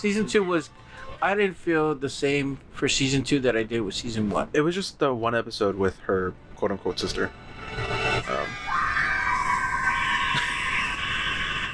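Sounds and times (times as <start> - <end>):
speech: 0.0 - 8.0
person vocally imitating a creature's raspy scream: 8.2 - 11.7.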